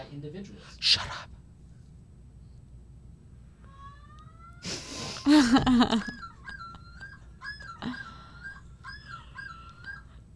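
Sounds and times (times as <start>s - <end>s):
speech: 0.1s - 1.4s, 4.6s - 6.2s
common loon yodel call: 5.9s - 10.1s.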